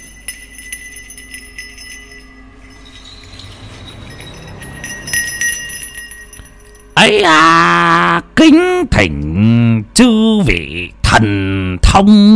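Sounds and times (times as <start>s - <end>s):
small hand bell shaken gently during a ritual at an altar table: 0.0s - 7.1s
speech: 7.0s - 7.7s, 8.4s - 12.3s.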